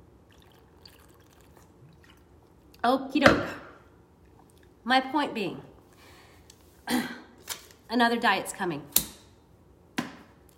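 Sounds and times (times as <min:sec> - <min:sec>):
water pouring and trickling into a glass: 0:00.3 - 0:02.3
speech: 0:02.8 - 0:03.6, 0:04.9 - 0:05.7, 0:07.9 - 0:09.0.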